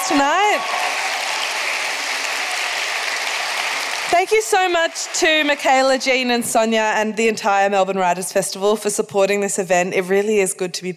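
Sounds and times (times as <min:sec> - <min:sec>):
audience applause at a storytelling event during a writers festival: 0:00.0 - 0:06.2
speech: 0:00.1 - 0:01.0, 0:04.1 - 0:10.9.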